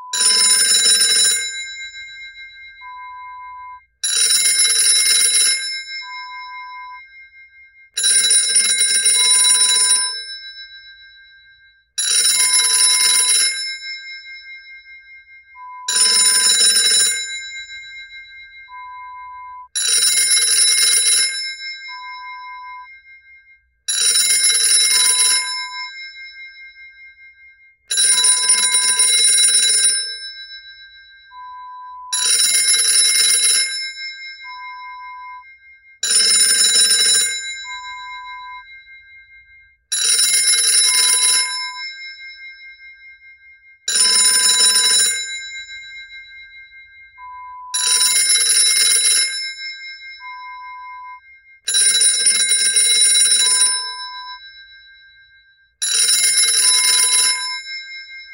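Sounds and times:
old fashioned telephone: 0.2s - 6.7s, 8.0s - 10.8s, 12.0s - 14.3s, 15.6s - 22.6s, 23.9s - 26.3s, 27.9s - 35.1s, 36.0s - 38.9s, 39.9s - 42.2s, 43.9s - 46.3s, 47.2s - 50.6s, 51.7s - 54.6s, 55.8s - 58.2s.

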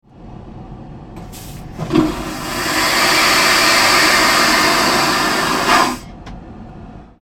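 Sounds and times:
airplane toilet flushing: 1.3s - 6.1s.

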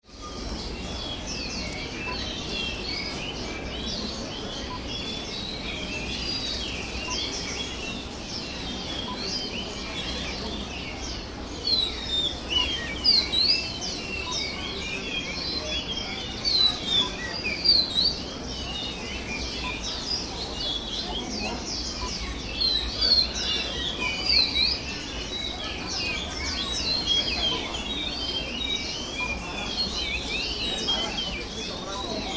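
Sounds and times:
bird market ambience in Hong Kong: 0.0s - 32.3s.

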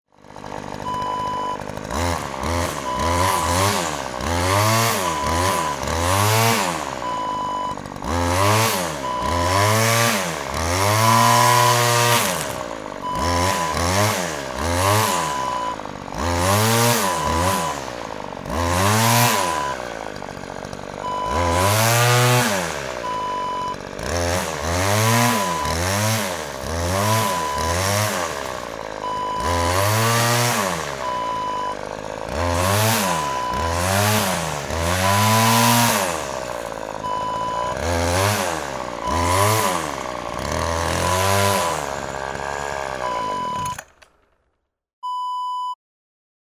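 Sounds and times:
string trimmer: 0.1s - 44.5s.

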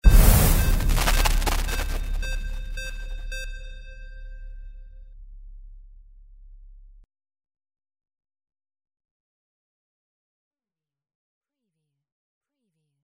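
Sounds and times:
sci-fi magic heal effect: 0.0s - 4.4s.

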